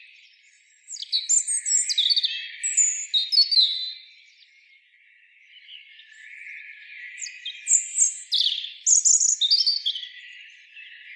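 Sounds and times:
European robin Erithacus rubecula singing: 0:00.0 - 0:04.7, 0:05.5 - 0:11.1.

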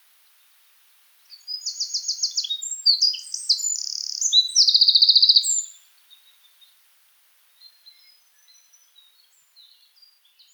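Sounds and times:
Eurasian wren Troglodytes troglodytes singing: 0:01.4 - 0:05.7.

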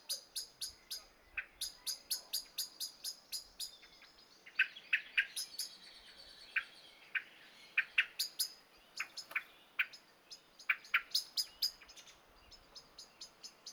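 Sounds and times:
common blackbird Turdus merula giving clicking chink calls: 0:00.0 - 0:13.7.

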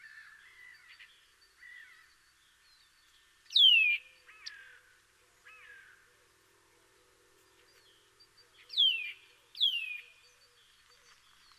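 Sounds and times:
Eurasian nuthatch sharp downslurred whistled calls: 0:03.5 - 0:04.6, 0:08.6 - 0:10.2.

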